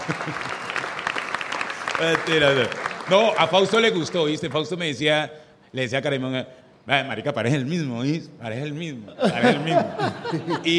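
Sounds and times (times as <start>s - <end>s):
laughter: 0.0s - 1.0s, 9.1s - 10.7s
audience applause: 0.0s - 4.3s
speech: 0.1s - 0.5s, 2.0s - 10.7s.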